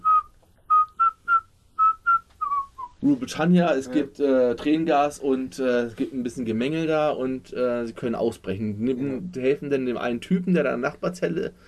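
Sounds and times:
person whistling a tune: 0:00.0 - 0:03.0
speech: 0:03.0 - 0:11.6.

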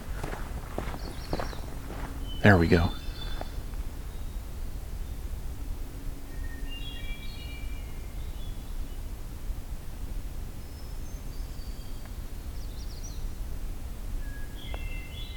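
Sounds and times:
magnolia warbler singing: 0:00.0 - 0:05.4, 0:06.3 - 0:09.2, 0:10.6 - 0:13.4, 0:14.2 - 0:15.3
low outdoor rumble: 0:00.0 - 0:14.2
speech: 0:02.4 - 0:03.0.

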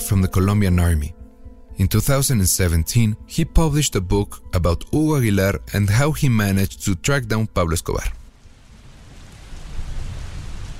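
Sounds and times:
speech: 0:00.1 - 0:01.2, 0:01.8 - 0:08.2
steady rain falling outdoors in Bogota: 0:08.2 - 0:10.7.

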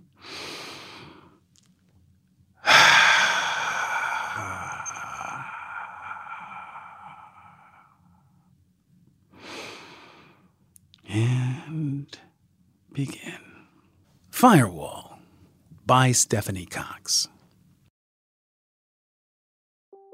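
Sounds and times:
deep breath: 0:00.2 - 0:01.4, 0:02.6 - 0:08.4, 0:09.3 - 0:10.6
speech: 0:14.4 - 0:14.8, 0:15.9 - 0:17.4.

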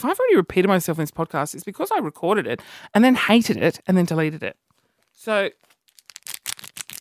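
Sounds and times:
speech: 0:00.0 - 0:05.7
condom wrapper crinkling: 0:04.9 - 0:07.0.

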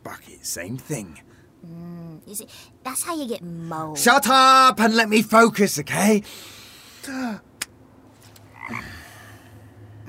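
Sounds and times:
faint noise: 0:00.0 - 0:10.0
speech: 0:00.4 - 0:07.5, 0:08.7 - 0:09.0
frog croaking: 0:08.5 - 0:09.2.

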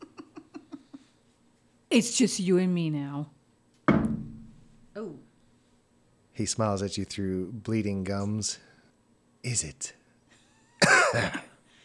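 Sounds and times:
speech: 0:01.9 - 0:03.4, 0:06.4 - 0:08.7, 0:09.4 - 0:10.0, 0:11.1 - 0:11.5
harsh throaty cough with rough rattling tail: 0:10.8 - 0:11.6.

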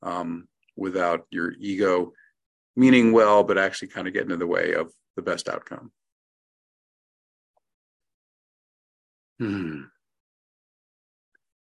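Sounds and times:
speech: 0:00.1 - 0:02.2, 0:02.8 - 0:06.0, 0:09.4 - 0:09.9
short voiced yawn: 0:09.4 - 0:10.0.

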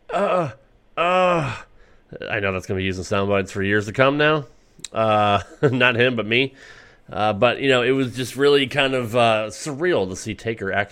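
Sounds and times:
person imitating heavy breathing and moaning: 0:00.0 - 0:01.8
speech: 0:00.2 - 0:00.6, 0:01.4 - 0:10.9
person imitating heavy breathing: 0:06.5 - 0:07.1.

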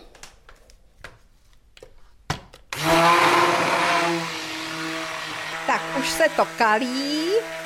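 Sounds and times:
hand blender whirring as it churns thick soap mixture of hydroxide and oils: 0:02.7 - 0:07.6
speech: 0:06.0 - 0:07.6.

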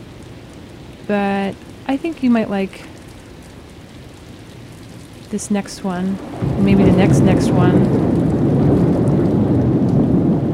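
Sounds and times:
deep continuous rumble of thunder: 0:00.0 - 0:10.5
heavy rain pouring: 0:00.0 - 0:10.5
speech: 0:01.1 - 0:02.9, 0:05.3 - 0:08.3.

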